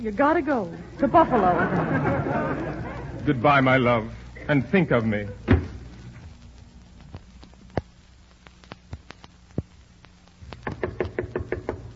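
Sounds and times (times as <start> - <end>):
speech: 0.0 - 5.4
laughter: 0.8 - 3.4
sharp knocking on a door: 10.6 - 11.9.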